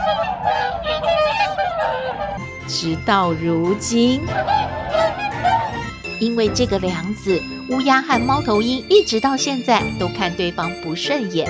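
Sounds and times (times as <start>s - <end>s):
swan honking: 0.0s - 8.8s
speech: 2.7s - 4.6s, 6.2s - 11.4s.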